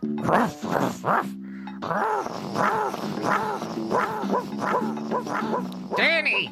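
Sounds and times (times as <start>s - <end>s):
dog barking: 0.2s - 6.1s
dog whining: 1.8s - 6.4s.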